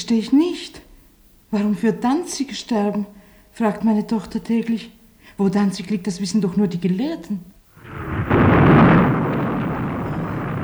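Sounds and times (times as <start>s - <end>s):
speech: 0.1s - 0.8s, 1.5s - 8.4s
anti-aircraft guns firing near a Paris railway station in wartime: 7.8s - 10.6s.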